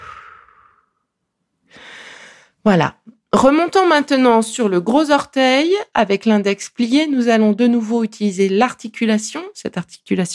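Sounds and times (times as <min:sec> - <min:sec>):
breathy exhalations during a self-guided foot reflexology massage: 0:00.0 - 0:01.0, 0:01.7 - 0:02.6
speech: 0:02.6 - 0:10.3.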